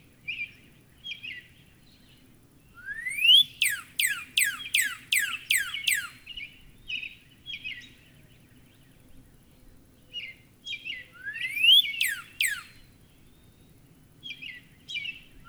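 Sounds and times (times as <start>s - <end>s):
soft Northern cardinal chirps: 0.3s - 9.0s, 10.1s - 15.4s
Northern cardinal song with downslurred and upslurred whistles: 2.8s - 6.4s, 10.7s - 15.4s.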